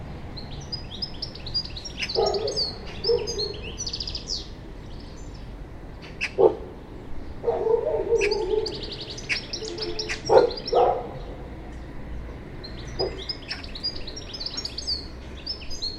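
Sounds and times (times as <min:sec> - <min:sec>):
European goldfinch Carduelis carduelis twittering calls: 0:00.5 - 0:05.4, 0:08.1 - 0:10.9, 0:12.6 - 0:15.9.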